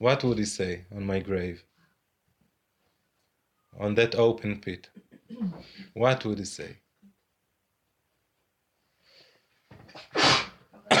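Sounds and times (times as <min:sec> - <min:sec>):
speech: 0:00.0 - 0:01.7, 0:03.8 - 0:06.8
person sneezing: 0:09.9 - 0:10.9.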